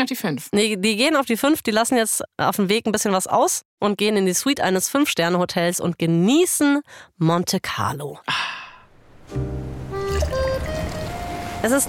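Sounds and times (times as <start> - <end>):
speech: 0.0 - 8.6, 9.3 - 9.6, 11.6 - 11.8
sparkling wine pouring into a glass in a hotel suite: 9.8 - 11.6.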